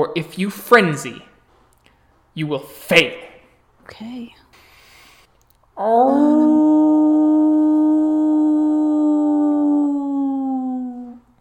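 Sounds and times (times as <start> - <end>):
speech: 0.0 - 1.3, 2.4 - 3.3, 3.9 - 4.4, 5.8 - 7.3
wolf howling mournfully: 5.8 - 11.2.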